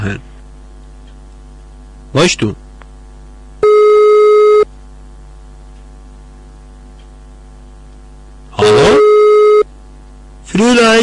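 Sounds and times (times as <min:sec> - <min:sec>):
speech: 0:00.0 - 0:00.3, 0:02.1 - 0:02.6, 0:10.8 - 0:11.0
telephone line tone while placing a call: 0:03.6 - 0:04.7, 0:08.6 - 0:09.7.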